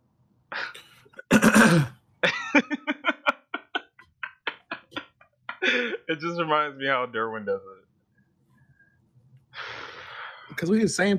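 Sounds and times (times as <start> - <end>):
person clearing throat loudly and theatrically: 1.2 - 2.0
speech: 1.6 - 2.8, 6.1 - 7.8, 10.6 - 11.1
laughter: 2.2 - 6.2.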